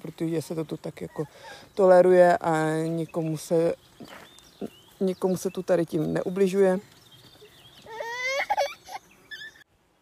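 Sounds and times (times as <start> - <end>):
speech: 0.2 - 7.0
baby girl fussing and whimpering: 7.8 - 9.6.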